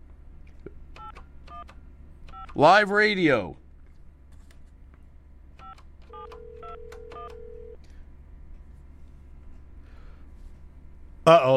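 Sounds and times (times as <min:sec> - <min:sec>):
low steady hum: 0:00.0 - 0:11.5
telephone number dialed on a keypad: 0:01.0 - 0:01.7, 0:02.3 - 0:02.6, 0:05.6 - 0:07.8
speech: 0:02.6 - 0:03.6, 0:11.3 - 0:11.5.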